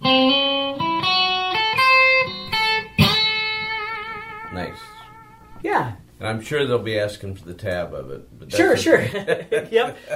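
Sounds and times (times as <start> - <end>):
electric guitar slow lick with minor bend on 2nd string: 0.0 - 5.6
speech: 5.7 - 10.1.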